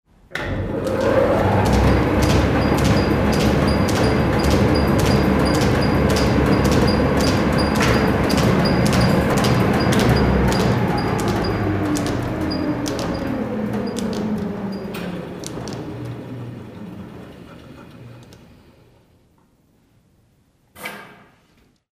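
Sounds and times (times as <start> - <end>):
seed cleaner rhythm: 1.0 - 14.6.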